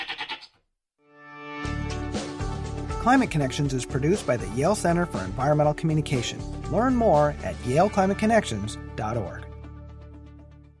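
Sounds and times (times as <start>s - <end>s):
goats bleating: 0.0s - 0.5s
speech: 3.0s - 9.4s.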